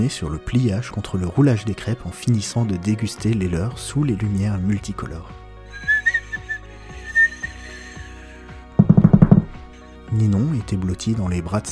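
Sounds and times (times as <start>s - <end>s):
speech: 0.0s - 5.9s, 10.2s - 11.7s
rising wavering firework whistle: 5.8s - 7.8s.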